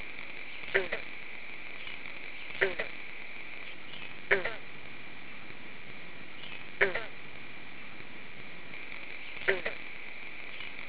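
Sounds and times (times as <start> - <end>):
green frog croaking: 0.0 - 4.8, 6.4 - 7.3, 8.8 - 10.8.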